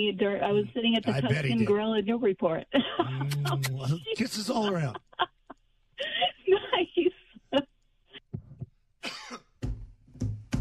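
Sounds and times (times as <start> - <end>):
speech: 0.0 - 5.3
laughter: 1.1 - 1.7, 2.8 - 7.6
harsh throaty coughs: 9.0 - 9.6.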